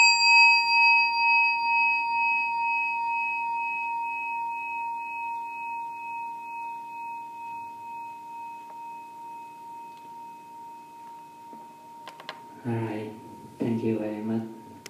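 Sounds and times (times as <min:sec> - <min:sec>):
meditation bell ringing during a seated meditation session: 0:00.0 - 0:14.8
speech: 0:12.6 - 0:14.6.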